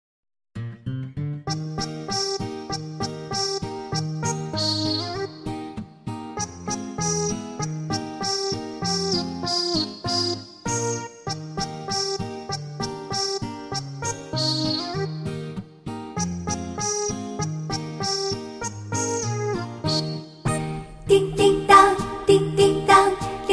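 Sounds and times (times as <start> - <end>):
Christmas song in Chinese: 1.5 - 15.5, 16.2 - 23.5.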